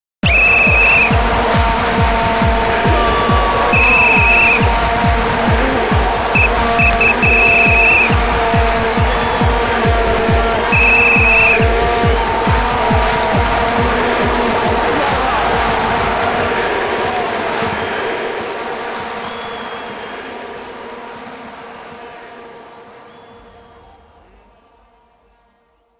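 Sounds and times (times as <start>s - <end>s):
techno music: 0.2s - 16.9s
vuvuzela: 0.2s - 20.5s.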